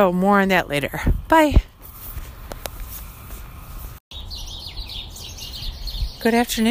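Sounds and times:
speech: 0.0s - 1.7s, 6.2s - 6.7s
birds squawking and chattering outdoors: 4.2s - 6.3s.

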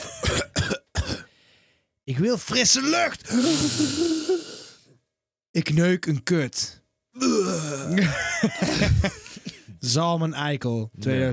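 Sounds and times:
harsh coughs: 0.0s - 1.3s, 7.2s - 9.7s
speech: 2.1s - 4.5s, 5.6s - 6.8s, 7.9s - 9.1s, 9.9s - 11.3s
laughter: 7.8s - 9.8s.

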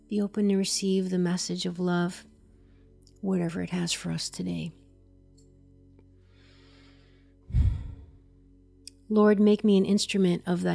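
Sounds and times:
faint steady low hum: 0.0s - 10.7s
speech: 0.1s - 2.3s, 3.2s - 4.8s, 9.1s - 10.7s
deep breath during a guided prayer: 6.4s - 8.2s.

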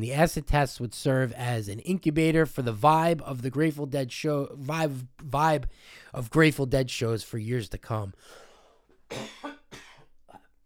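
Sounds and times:
speech: 0.0s - 8.4s, 9.1s - 9.8s
person coughing: 9.1s - 10.5s.

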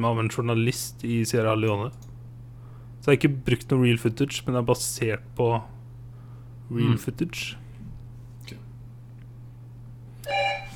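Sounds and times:
speech: 0.0s - 2.1s, 3.0s - 5.8s, 6.7s - 7.6s
electronic doorbell chime: 10.3s - 10.7s.

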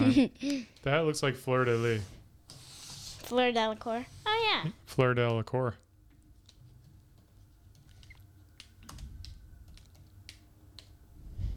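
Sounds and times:
low hum: 0.0s - 11.5s
speech: 0.1s - 2.2s, 3.3s - 5.8s
typing on a computer keyboard: 7.8s - 10.9s.

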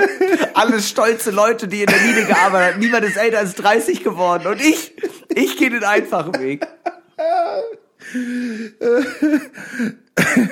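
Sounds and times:
laughter: 0.0s - 0.8s, 1.8s - 7.9s, 8.8s - 9.6s
speech: 0.0s - 10.4s
man coughing rough throaty coughs imitating a smoker's hack: 1.9s - 3.4s, 4.3s - 5.4s, 8.8s - 10.4s.

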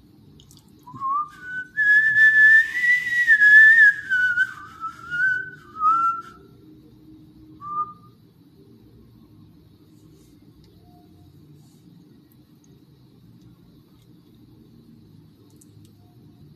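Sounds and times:
person whistling a wavering tune: 0.9s - 6.5s, 7.6s - 8.1s.

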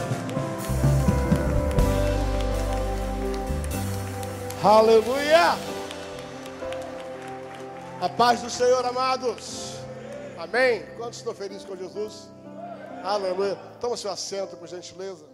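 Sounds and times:
large crowd clapping loudly and steadily: 0.0s - 10.9s
sustained organ-like music: 0.0s - 15.3s
speech: 4.6s - 5.7s, 8.0s - 9.7s, 10.4s - 12.4s, 13.0s - 15.3s.

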